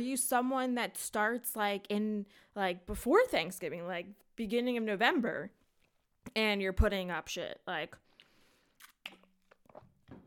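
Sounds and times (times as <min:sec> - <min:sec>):
speech: 0:00.0 - 0:05.6, 0:06.2 - 0:08.1
person sipping water: 0:08.1 - 0:10.2.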